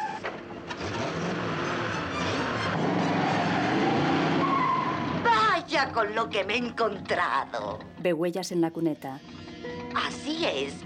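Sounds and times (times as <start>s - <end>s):
car skidding while braking hard on a snowy road: 0.0s - 5.7s
speech: 5.7s - 9.3s, 10.0s - 10.8s.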